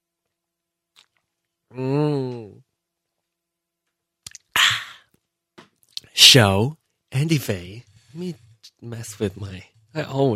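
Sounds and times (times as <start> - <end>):
speech: 1.7 - 2.4, 6.3 - 10.3
person humming: 1.7 - 2.6, 4.6 - 5.0.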